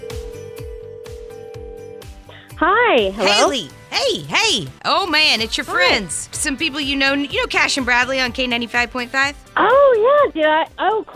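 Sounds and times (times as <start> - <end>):
phone ringback tone on an outgoing call: 0.0 - 2.1
speech: 2.6 - 11.1
thumping music beat: 3.2 - 9.9.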